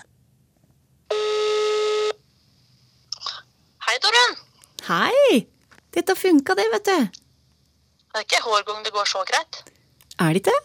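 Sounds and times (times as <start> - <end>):
electronic phone ringing tone: 1.1 - 2.2
speech: 4.0 - 7.2, 8.2 - 10.6.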